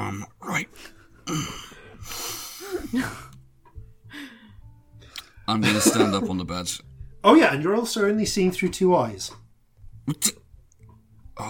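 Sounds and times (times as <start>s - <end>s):
speech: 0.2s - 1.6s, 5.5s - 9.4s, 10.1s - 10.4s
deep calming breaths with sigh-like tone: 0.8s - 3.4s, 4.0s - 5.5s
laughter: 5.5s - 6.5s.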